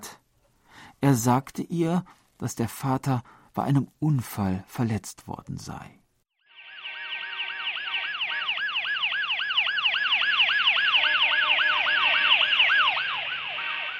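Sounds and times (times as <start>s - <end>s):
speech: 1.0s - 6.0s
ambulance siren whooping in a fast yelp: 6.5s - 13.9s
car horns in street: 13.5s - 13.9s.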